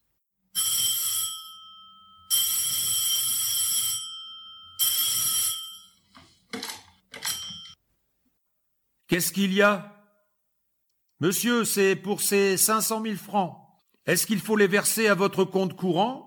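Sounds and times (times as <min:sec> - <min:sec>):
old-fashioned telephone bell ringing: 0:00.6 - 0:06.1, 0:07.2 - 0:07.8
speech: 0:09.1 - 0:10.0, 0:11.2 - 0:16.2.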